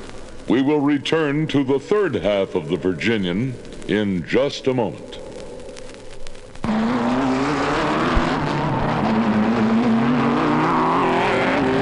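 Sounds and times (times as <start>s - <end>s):
speech: 0.5s - 5.2s
race car engines roaring at a speedway: 6.6s - 11.7s.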